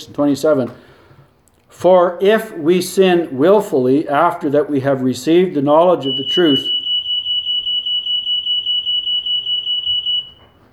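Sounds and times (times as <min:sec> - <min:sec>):
speech: 0:00.0 - 0:00.9, 0:01.7 - 0:06.8
smoke alarm with fast pulsing warble: 0:05.9 - 0:10.7.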